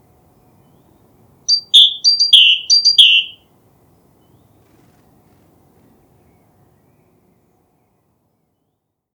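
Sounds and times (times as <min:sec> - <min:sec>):
Great tit Parus major piping and whistling call phrase: 0:01.5 - 0:03.4.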